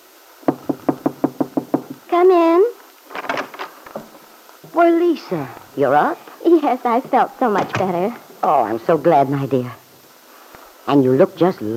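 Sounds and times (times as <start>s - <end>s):
soft knocks on a wooden door: 0.4s - 2.0s
speech: 2.1s - 2.8s, 4.8s - 9.8s, 10.9s - 11.7s.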